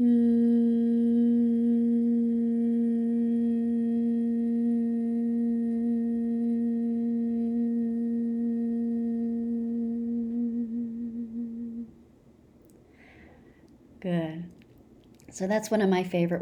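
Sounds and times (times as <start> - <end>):
long low humming exhalation during breathing exercise: 0.0 - 12.0, 12.9 - 13.7
speech: 15.4 - 16.4.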